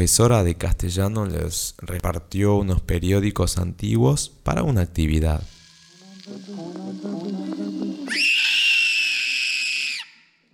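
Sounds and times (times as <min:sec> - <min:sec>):
speech: 0:00.0 - 0:05.6
girl's loud shrill scream: 0:08.0 - 0:10.4.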